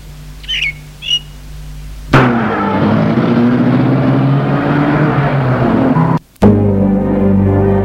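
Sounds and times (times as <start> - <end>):
bird chirps: 0.0 - 1.4
car engine starting and revving: 2.1 - 7.7.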